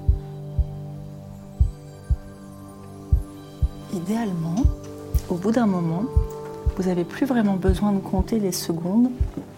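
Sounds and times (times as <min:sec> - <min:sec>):
heartbeat: 0:00.0 - 0:00.8, 0:01.6 - 0:02.3, 0:03.1 - 0:03.9, 0:04.6 - 0:05.3, 0:06.1 - 0:07.0, 0:07.7 - 0:08.4, 0:09.2 - 0:09.4
speech: 0:03.9 - 0:06.2, 0:06.8 - 0:09.5.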